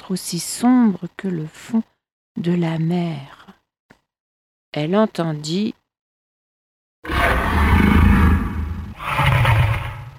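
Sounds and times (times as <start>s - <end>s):
speech: 0.1s - 3.4s, 4.7s - 5.8s
fire-breathing dragon monster roaring: 7.0s - 10.1s.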